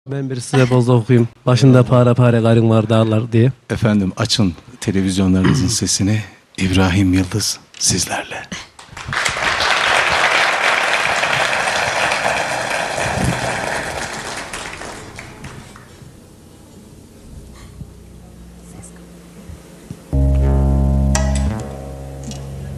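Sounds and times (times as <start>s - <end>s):
speech: 0.1s - 9.2s
audience applause at a televised stage show: 9.0s - 15.8s
brief loud low tone: 17.9s - 22.7s.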